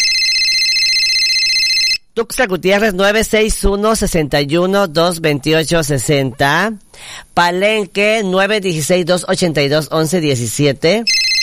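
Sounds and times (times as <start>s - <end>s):
telephone ringing with electronic warble in a radio station booth: 0.0s - 2.1s, 11.0s - 11.4s
speech: 2.2s - 11.2s.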